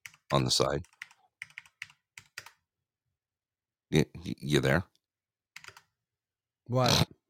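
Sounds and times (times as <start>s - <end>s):
slow keystrokes on a computer keyboard: 0.0s - 2.6s, 5.6s - 6.0s
speech: 0.3s - 1.0s, 3.9s - 4.9s, 6.7s - 7.1s.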